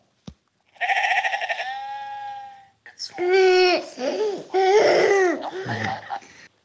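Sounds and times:
sheep bleat played by an audio pen on a children's farm picture book: 0.7s - 2.7s
laughter: 4.1s - 6.4s.

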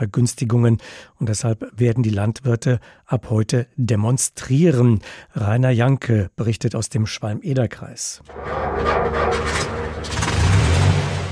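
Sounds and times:
speech: 0.0s - 9.8s
tractor diesel engine starting: 8.4s - 11.2s.

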